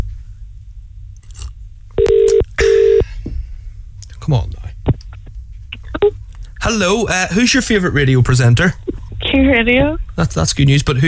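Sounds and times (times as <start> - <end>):
telephone ringing tone of an unanswered call: 2.0 - 3.0
speech: 4.3 - 4.6, 6.7 - 11.0.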